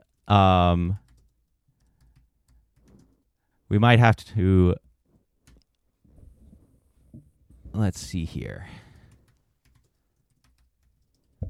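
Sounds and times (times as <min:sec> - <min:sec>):
furious typing on a computer keyboard: 0:00.1 - 0:03.3, 0:04.8 - 0:05.8, 0:08.9 - 0:11.4
speech: 0:00.3 - 0:01.1, 0:03.7 - 0:04.8, 0:07.8 - 0:08.8.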